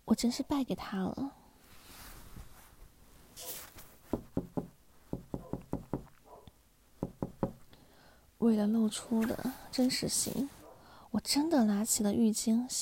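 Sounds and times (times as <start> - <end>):
speech: 0.2 - 1.4, 8.4 - 10.6, 11.2 - 12.7
knocking on a door: 4.1 - 6.1, 7.0 - 7.6.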